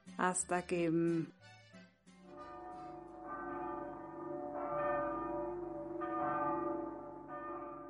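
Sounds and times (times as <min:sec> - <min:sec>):
speech: 0:00.2 - 0:01.5
bronze chapel bells ringing: 0:02.3 - 0:07.8.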